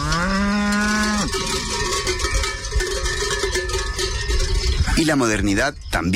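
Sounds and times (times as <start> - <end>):
endangered beef cow breed mooing: 0.0 - 1.8
bells jangling: 0.0 - 6.1
outdoor noise: 0.0 - 6.1
speech: 5.0 - 6.1.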